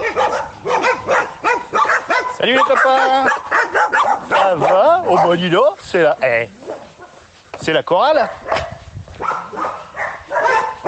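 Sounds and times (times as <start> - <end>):
several dogs barking and whimpering: 0.0 - 5.8, 6.5 - 7.3, 8.2 - 10.8
speech: 2.4 - 6.6, 7.6 - 8.4.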